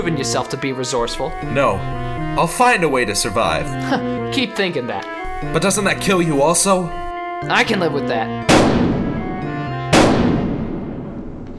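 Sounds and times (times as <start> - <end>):
speech: 0.0 - 8.8
gunshot: 8.5 - 9.3, 9.9 - 11.5.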